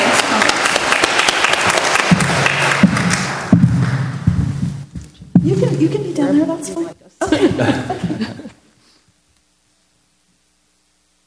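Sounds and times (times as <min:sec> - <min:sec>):
crowd applauding: 0:00.0 - 0:04.2
low thuds: 0:02.1 - 0:06.2
laughter: 0:07.2 - 0:08.7.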